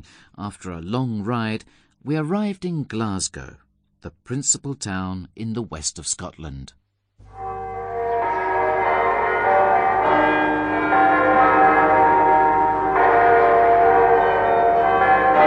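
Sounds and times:
speech: 0.0 - 6.8
several church bells ringing on a Sunday morning in Glasgow Scotland: 7.3 - 15.4.

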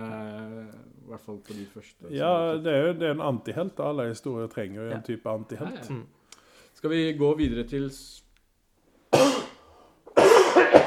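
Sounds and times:
speech: 1.2 - 6.2, 6.8 - 8.2
harsh coughing and throat clearing: 9.1 - 10.8.

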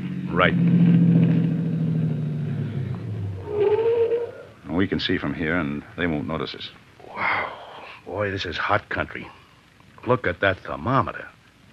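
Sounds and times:
car engine rumbling as the car drives up in hot dry country: 0.0 - 7.0
speech: 0.3 - 1.4, 4.8 - 7.3, 8.1 - 9.4, 10.0 - 11.7.

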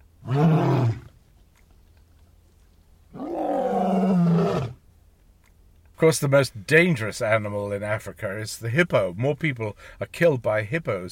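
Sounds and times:
big male lion roaring at sunset: 0.2 - 1.1, 3.1 - 4.8
speech: 6.0 - 11.1.

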